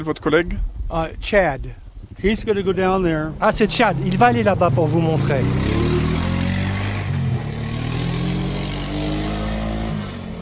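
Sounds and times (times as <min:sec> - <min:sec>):
speech: 0:00.0 - 0:05.8
quad ATV engine driving along: 0:02.2 - 0:10.4.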